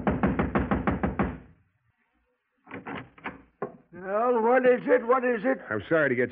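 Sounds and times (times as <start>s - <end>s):
knocking on a wooden apartment door: 0.0s - 1.4s
speech: 4.0s - 6.2s.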